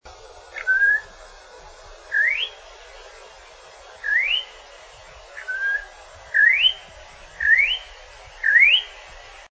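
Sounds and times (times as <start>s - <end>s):
faint steady hiss: 0.0s - 9.4s
campo troupial whistling: 0.6s - 1.1s, 2.1s - 2.6s, 4.0s - 4.6s, 5.4s - 9.0s.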